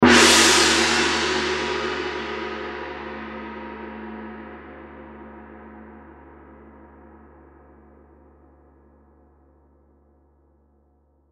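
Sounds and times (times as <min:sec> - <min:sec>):
gong cymbal crash: 0:00.0 - 0:04.6.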